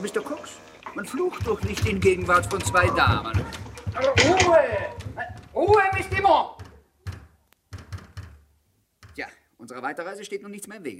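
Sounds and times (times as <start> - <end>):
speech: 0.0 - 5.0, 5.6 - 6.6, 9.2 - 10.9
woman pounding her fist on a door: 1.4 - 9.2.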